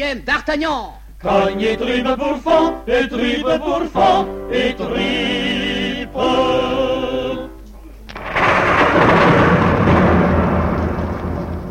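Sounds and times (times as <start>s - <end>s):
speech: 0.0s - 6.9s
loud thunder rumbling: 7.9s - 11.6s.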